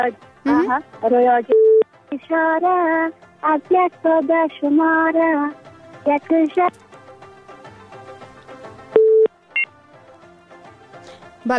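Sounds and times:
speech: 0.0s - 6.9s
telephone tone after a call is cut off: 1.5s - 1.8s, 8.9s - 9.7s.

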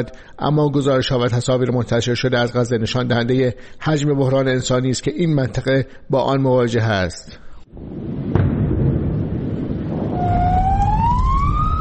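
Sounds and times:
speech: 0.0s - 8.3s
constant low rumble: 7.8s - 11.7s
sharp bang during bombing in Gaza: 8.2s - 11.4s
ambulance siren wailing: 10.1s - 11.7s.

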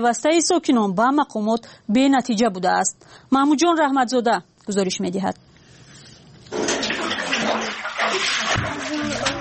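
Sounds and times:
speech: 0.0s - 5.4s
water being scooped and poured out by hand from under house: 6.1s - 9.3s.

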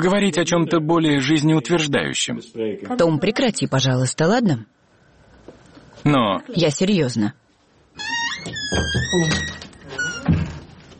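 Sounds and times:
speech: 0.0s - 4.8s, 6.0s - 7.4s, 8.7s - 9.6s
office door hinge squeaking: 8.0s - 10.7s.

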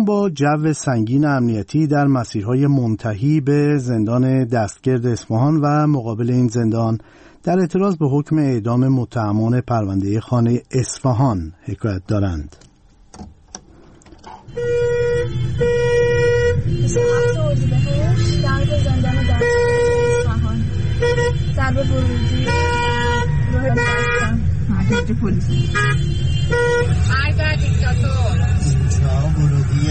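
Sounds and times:
speech: 0.0s - 13.3s, 14.5s - 19.6s, 21.6s - 22.8s, 23.6s - 29.8s
continuous engine rumble of dense road traffic: 1.6s - 29.8s
car horns honking in heavy night traffic in Isfahan, Iran, during protests: 14.3s - 29.8s.

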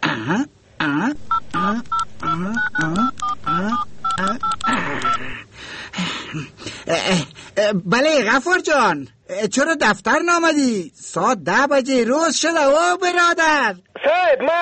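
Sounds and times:
speech: 0.2s - 4.5s, 6.3s - 14.6s
telephone touch-tone dialing beeps: 1.3s - 5.3s.

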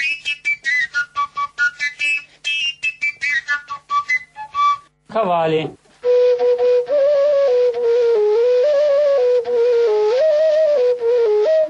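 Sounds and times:
tilincă Romanian overtone flute playing: 0.0s - 5.0s, 6.0s - 11.6s
speech: 5.2s - 5.8s.

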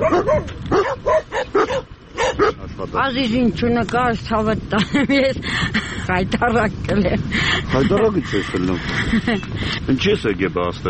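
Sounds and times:
dogs barking at a garbage dump: 0.0s - 2.6s
speech: 3.0s - 10.8s.

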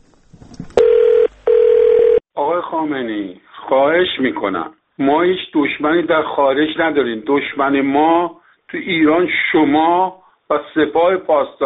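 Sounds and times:
telephone ring tone on a call-in phone line: 0.8s - 2.2s
speech: 2.7s - 11.6s.

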